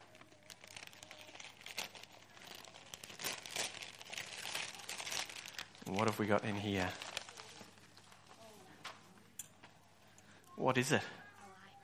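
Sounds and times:
wrapping paper crinkling as a gift is unwrapped: 0.0 - 8.8
speech: 5.9 - 7.0, 10.6 - 11.2.

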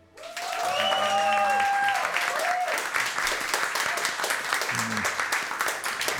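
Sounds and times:
live audience applause at public recording: 0.0 - 6.1
murmurs: 4.7 - 5.3.

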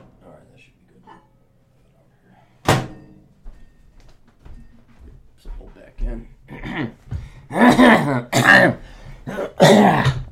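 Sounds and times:
person coughing: 6.5 - 10.3
throat clearing: 6.5 - 10.3.

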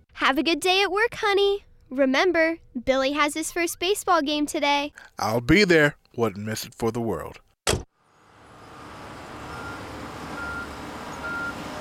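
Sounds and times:
speech: 0.2 - 7.4
heavy truck engine rumbling at a road resurfacing site: 8.0 - 11.8
roadway noise at a road resurfacing site: 8.0 - 11.8
short electronic truck reversing beeps: 9.5 - 11.6.

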